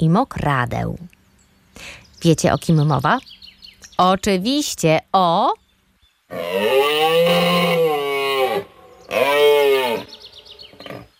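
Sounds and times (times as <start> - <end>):
speech: 0.0 - 1.1, 1.8 - 3.4, 4.0 - 5.6, 6.3 - 7.7
Eurasian elk bellowing moan: 6.3 - 11.1.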